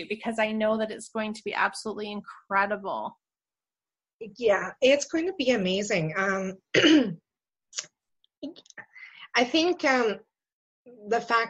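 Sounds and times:
speech: 0.0s - 3.2s, 4.2s - 10.3s, 11.0s - 11.4s
person clearing throat: 6.7s - 7.2s.

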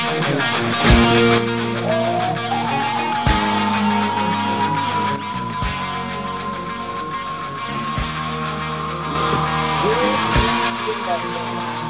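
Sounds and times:
rock vocalist screaming high-pitched: 0.2s - 11.8s
loud dense band music with pounding drums: 0.8s - 1.3s, 10.4s - 10.8s.

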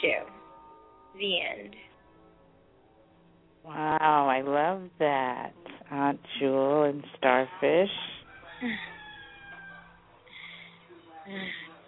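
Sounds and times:
speech: 1.2s - 1.9s, 3.6s - 8.9s, 11.3s - 11.6s
rooster crowing: 8.2s - 10.2s.

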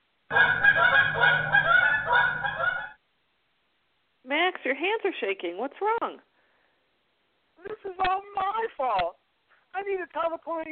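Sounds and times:
flock of geese honking as they fly: 0.3s - 3.0s
speech: 4.8s - 6.3s, 7.8s - 9.2s, 9.8s - 10.7s.

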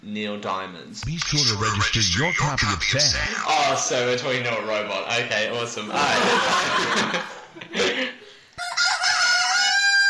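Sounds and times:
speech: 0.0s - 8.1s
laughter: 5.9s - 8.2s
rooster crowing: 8.6s - 10.0s.

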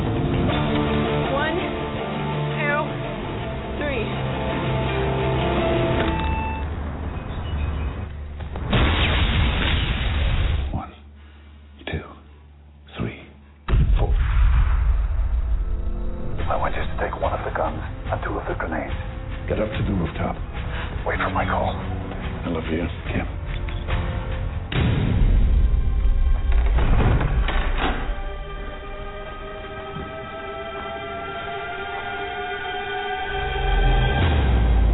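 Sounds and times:
film scene music: 0.0s - 8.7s, 13.7s - 34.9s
grenade explosion in a film scene: 8.6s - 10.7s, 13.7s - 15.6s
scattered thuds: 26.5s - 28.1s.

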